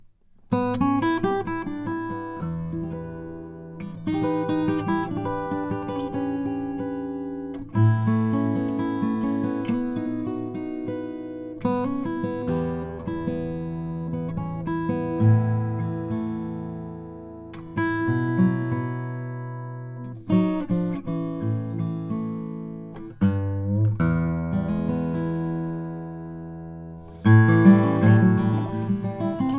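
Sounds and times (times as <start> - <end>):
mahogany guitar: 0.0 - 29.5.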